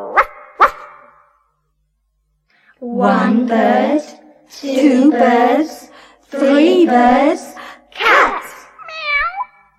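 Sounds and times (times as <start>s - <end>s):
dog barking: 0.0s - 1.1s
speech: 2.8s - 7.5s.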